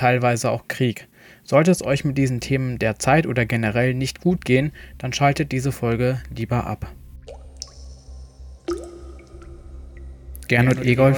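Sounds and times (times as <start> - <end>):
speech: 0.0 - 7.0, 10.5 - 11.1
low steady rumble: 1.8 - 11.1
rainwater dripping into a bunker cell: 7.2 - 11.1.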